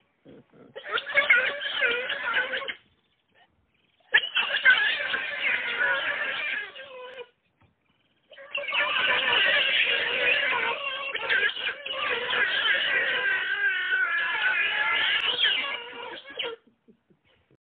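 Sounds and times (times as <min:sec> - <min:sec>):
giant otter squealing screams: 0:00.7 - 0:02.8, 0:03.9 - 0:07.3, 0:08.2 - 0:16.6.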